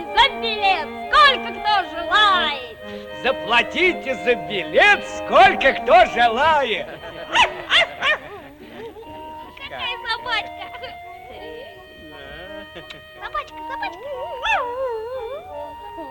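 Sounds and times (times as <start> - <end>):
speech: 0.4 - 7.5
laughter: 2.9 - 16.1
white poodle yipping, whining and howling: 7.3 - 8.4, 14.0 - 16.1.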